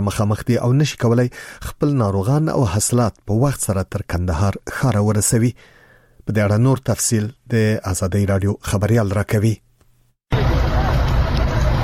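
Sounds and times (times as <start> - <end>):
speech: 0.0 - 9.6
crowd babble: 10.3 - 11.8
vehicle engine rumbling as a car stuck in mud is pulled out: 10.3 - 11.8.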